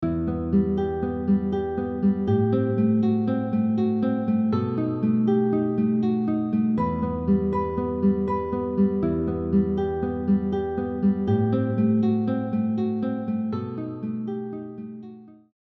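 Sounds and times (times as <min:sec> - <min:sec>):
guitar study in E minor: 0:00.0 - 0:15.5.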